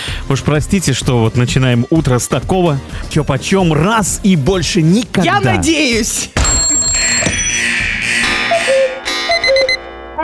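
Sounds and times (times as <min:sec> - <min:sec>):
speech: 0:00.3 - 0:06.4
loud shrill alarm clock ringing: 0:06.4 - 0:09.8.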